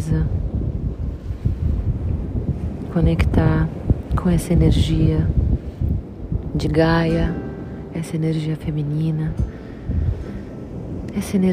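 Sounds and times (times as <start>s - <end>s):
ocean surf roaring: 0.0s - 11.5s
wind buffeting the microphone: 0.0s - 11.5s
speech: 3.0s - 5.4s, 6.6s - 7.4s, 8.0s - 9.5s, 11.2s - 11.5s.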